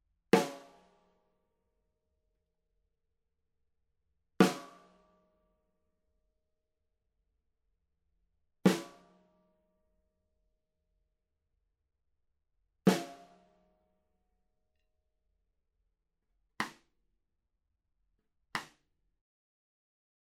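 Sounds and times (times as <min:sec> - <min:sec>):
snare drum from overhead: 0:00.4 - 0:00.8, 0:04.4 - 0:04.8, 0:08.7 - 0:09.0, 0:12.9 - 0:13.3, 0:18.6 - 0:18.8.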